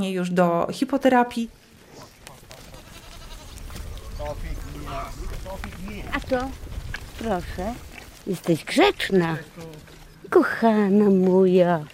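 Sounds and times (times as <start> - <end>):
speech: 0.0 - 1.7, 4.3 - 11.9
young goat bleating: 2.5 - 3.9.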